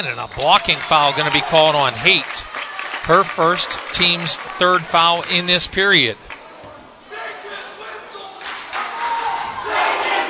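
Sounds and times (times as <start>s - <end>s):
large crowd cheering and shouting at a home girls basketball playoff game: 0.0s - 6.2s, 8.6s - 10.2s
speech: 0.0s - 6.2s.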